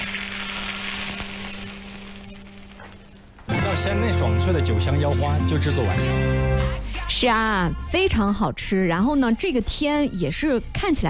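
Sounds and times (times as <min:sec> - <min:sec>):
hot rapeseed oil with red Sichuan peppercorns sizzling poured over a dish: 0:00.0 - 0:03.4
speech: 0:03.7 - 0:11.0.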